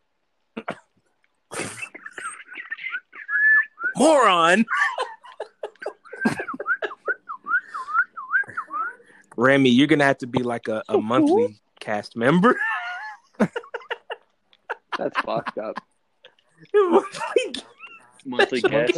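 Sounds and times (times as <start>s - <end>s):
laughter: 1.6s - 7.4s, 12.4s - 15.9s, 16.7s - 18.9s
person attempting a mocking whistle: 2.9s - 4.0s, 6.3s - 9.0s
speech: 4.0s - 4.9s, 9.4s - 12.7s, 15.0s - 15.9s, 18.3s - 18.9s.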